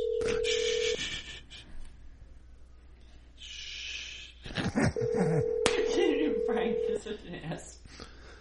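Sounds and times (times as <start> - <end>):
outgoing call ringback tone: 0.0 - 1.0, 5.0 - 7.0.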